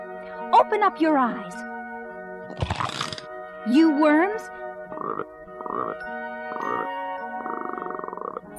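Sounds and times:
speech: 0.6s - 1.7s, 2.5s - 6.2s
frogs croaking in short buzzing bursts and pulsing trill: 4.9s - 8.5s.

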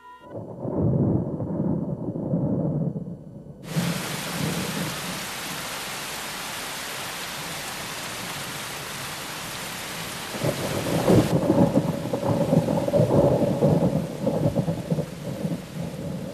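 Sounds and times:
deep rumbling thunder: 0.3s - 5.6s, 10.3s - 16.3s
steady rain pouring down from gray storm clouds after sunset: 3.6s - 16.3s.

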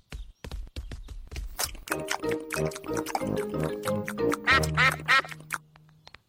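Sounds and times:
ducks quacking: 1.9s - 5.6s.

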